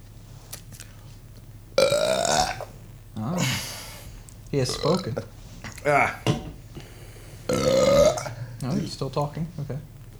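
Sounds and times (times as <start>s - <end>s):
burping into a microphone: 1.8s - 2.8s, 4.7s - 6.9s, 7.5s - 8.4s
speech: 4.5s - 6.4s, 8.9s - 9.9s.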